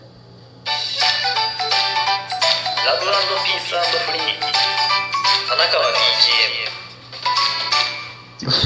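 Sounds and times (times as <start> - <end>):
bright cheerful podcast jingle with chiming bell-like tones and bouncy melody: 0.8 - 6.6
speech: 2.9 - 6.6, 8.4 - 8.6.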